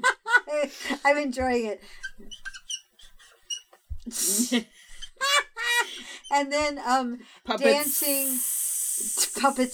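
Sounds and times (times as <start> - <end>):
speech: 0.6 - 2.5, 4.1 - 5.4, 6.0 - 9.7
voice imitating hissing steam escaping: 4.2 - 4.6, 7.7 - 9.7.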